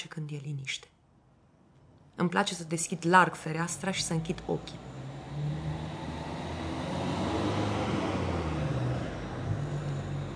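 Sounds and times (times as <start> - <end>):
speech: 0.1 - 1.0, 2.2 - 5.6
cars passing on road at night: 2.8 - 10.3.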